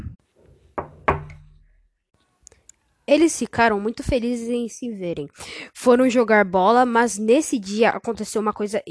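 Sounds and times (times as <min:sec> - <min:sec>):
knocking on a wooden door: 0:00.8 - 0:01.6
speech: 0:03.1 - 0:08.8.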